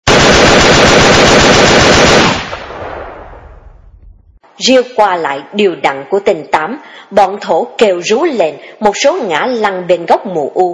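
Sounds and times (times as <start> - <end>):
burst of automatic gunfire: 0.0 - 3.3
speech: 4.6 - 10.7.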